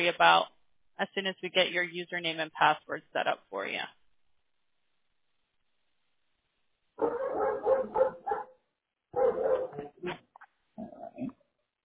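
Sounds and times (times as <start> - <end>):
speech: 0.0 - 4.0
Doberman dogs barking: 7.0 - 9.9.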